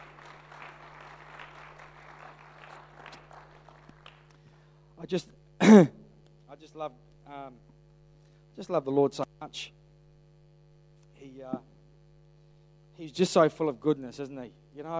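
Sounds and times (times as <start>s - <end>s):
crowd clapping: 0.0s - 4.4s
speech: 5.0s - 6.0s, 6.6s - 7.7s, 8.6s - 9.8s, 11.3s - 11.7s, 13.0s - 14.9s
person clearing throat: 5.6s - 6.1s.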